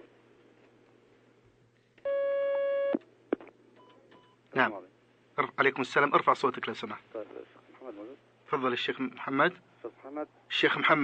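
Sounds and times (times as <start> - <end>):
steady electronic telephone line tone of an incoming call: 2.0 - 3.0
speech: 4.6 - 7.2, 8.5 - 11.0.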